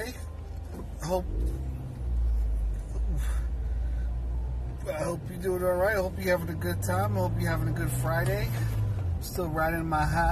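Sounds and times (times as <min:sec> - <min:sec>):
car engine and road rumble heard from inside a car heading onto a freeway: 0:00.0 - 0:10.2
speech: 0:01.1 - 0:01.6, 0:04.9 - 0:10.2.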